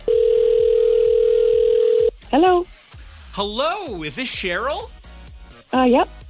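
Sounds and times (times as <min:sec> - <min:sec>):
electronic telephone tone of an outgoing radio call: 0:00.0 - 0:02.1
speech: 0:03.4 - 0:05.0, 0:05.7 - 0:06.2.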